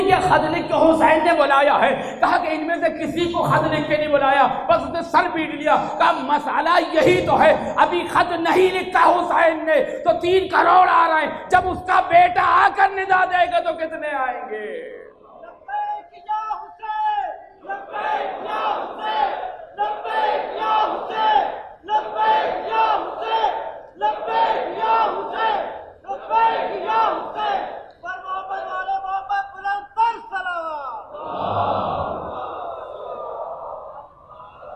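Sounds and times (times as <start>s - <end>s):
speech: 0.2s - 15.0s, 17.6s - 32.4s
large crowd chanting religious slogans in unison: 17.6s - 28.6s, 31.1s - 34.7s
roar of crowd voices: 31.2s - 34.7s.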